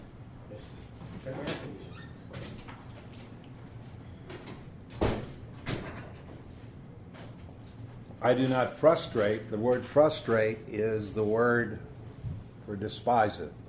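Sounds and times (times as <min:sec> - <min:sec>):
steady room hum: 0:00.0 - 0:13.6
doors shutting with solid thuds: 0:04.3 - 0:06.3
speech: 0:08.2 - 0:11.9, 0:12.7 - 0:13.6.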